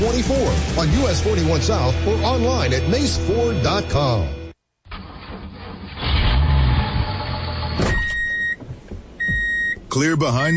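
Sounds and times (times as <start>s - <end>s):
speech: 0.2s - 4.4s, 10.0s - 10.5s
heavy equipment diesel engine rumbling and revving: 5.0s - 7.8s
brief mechanical whine: 5.2s - 8.1s.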